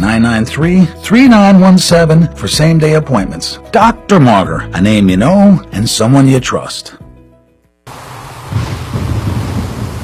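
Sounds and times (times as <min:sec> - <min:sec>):
music: 0:00.0 - 0:07.9
speech: 0:00.2 - 0:07.0
deep rumbling gusts of strong wind: 0:07.9 - 0:10.0
heavy rainstorm: 0:07.9 - 0:10.0.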